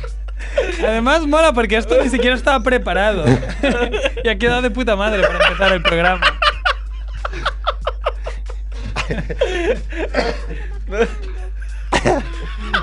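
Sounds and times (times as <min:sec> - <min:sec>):
person laughing into a microphone: 0:00.0 - 0:04.5, 0:05.1 - 0:12.8
speech: 0:00.8 - 0:06.3, 0:09.1 - 0:11.3
person coughing into a microphone: 0:10.1 - 0:11.1.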